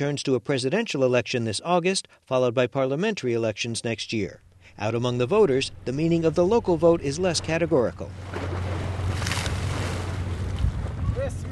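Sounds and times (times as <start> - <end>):
speech: 0.0 - 8.7
low engine drone: 4.5 - 11.1
gusty wind: 4.7 - 11.5
ship wakes splashing against the European banks of the Bosporus: 4.9 - 11.2.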